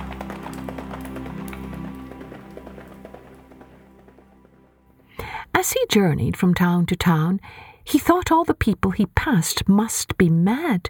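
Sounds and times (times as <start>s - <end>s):
horse hoofbeats as a rider rides away: 0.0s - 6.4s
speech: 5.6s - 10.8s.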